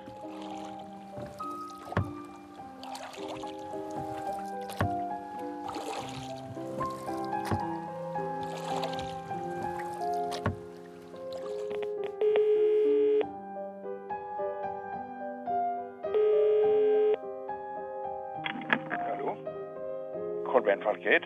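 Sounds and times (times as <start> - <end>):
oars dipping and splashing in water: 0.0 - 12.5, 18.4 - 19.4
soft sustained musical backdrop: 0.0 - 21.2.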